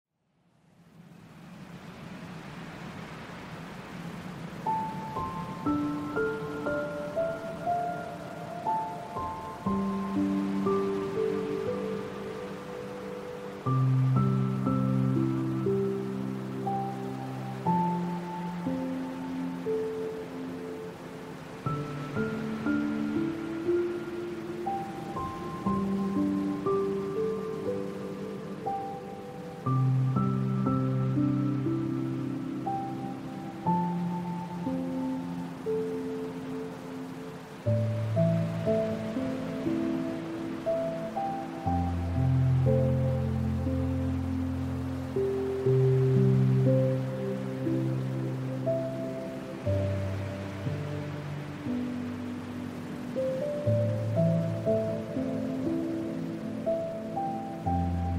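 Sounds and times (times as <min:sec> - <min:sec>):
ocean waves: 0:00.6 - 0:58.1
relaxing music for sleep: 0:00.9 - 0:58.1.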